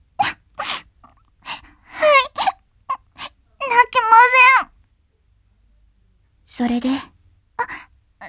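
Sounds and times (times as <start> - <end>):
person crying and whimpering: 0.2 - 4.6
speech: 6.6 - 7.1.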